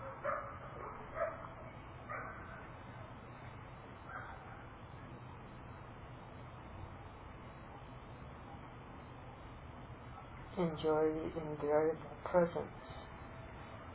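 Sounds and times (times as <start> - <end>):
dogs barking: 0.0 - 2.7, 4.1 - 4.7
low steady hum: 0.0 - 13.9
speech: 10.6 - 12.8.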